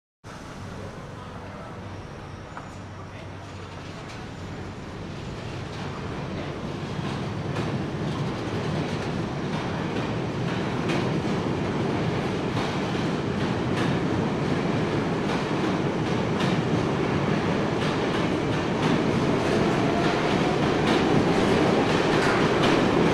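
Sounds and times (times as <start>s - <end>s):
subway train arriving and departing: 0.2s - 23.1s.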